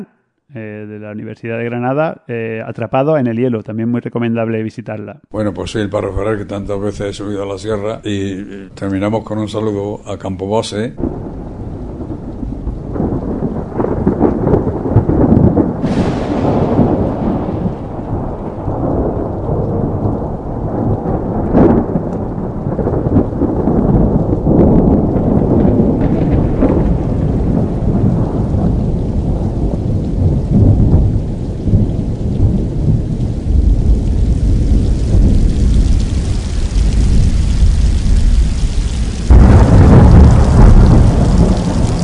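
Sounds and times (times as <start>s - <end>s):
speech: 0.0s - 11.4s
loud crack of thunder: 5.3s - 9.8s, 10.9s - 42.0s
steady hissing rain: 5.4s - 42.0s
deep rolling thunder: 11.0s - 42.0s.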